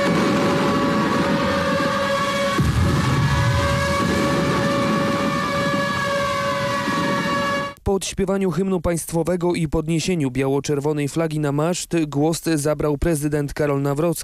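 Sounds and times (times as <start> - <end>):
piercing sirens wailing outdoors: 0.0 - 7.8
speech: 8.0 - 14.2.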